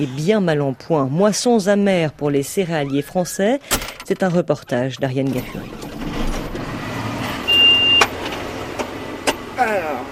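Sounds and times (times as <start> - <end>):
speech: 0.0 - 5.8
tractor engine on a French cereal farm rumbling: 1.7 - 10.1
rising whining tone: 5.7 - 8.3.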